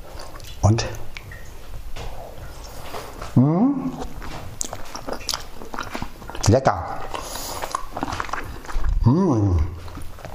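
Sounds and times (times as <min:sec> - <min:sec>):
speech: 0:00.6 - 0:01.0, 0:03.4 - 0:04.1, 0:06.5 - 0:07.1
biting and chewing untoasted toast bread with meat salad: 0:02.8 - 0:10.3.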